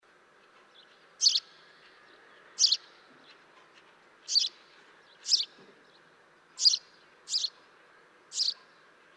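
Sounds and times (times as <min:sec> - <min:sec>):
faint steady background noise: 0:00.0 - 0:09.1
house sparrow Passer domesticus chirping: 0:00.8 - 0:03.4, 0:04.2 - 0:05.6, 0:06.6 - 0:07.6, 0:08.3 - 0:09.1.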